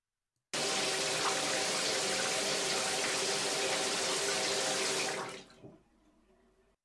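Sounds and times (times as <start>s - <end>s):
shower water pouring while rinsing off shower gel: 0.6s - 5.8s.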